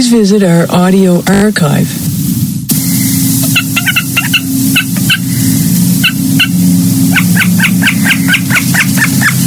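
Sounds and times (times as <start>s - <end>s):
speech: 0.0s - 2.2s
constant low rushing noise: 0.0s - 9.4s
common snipe giving sharp repeated chipping calls: 2.9s - 9.4s.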